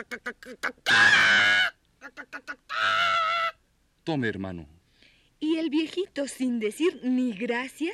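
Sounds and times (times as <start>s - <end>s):
hen clucking and squawking: 0.0s - 3.6s
speech: 0.0s - 4.8s, 5.4s - 7.9s.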